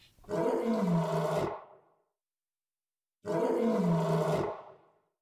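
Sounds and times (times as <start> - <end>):
lion roaring: 0.3 - 1.8, 3.3 - 4.8.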